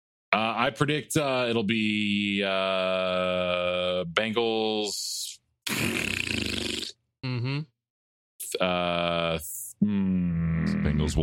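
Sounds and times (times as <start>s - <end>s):
speech: 0.3s - 6.5s, 7.2s - 7.7s, 8.5s - 11.2s
voice imitating farting with raspberry blasts: 5.7s - 7.7s, 9.8s - 11.2s.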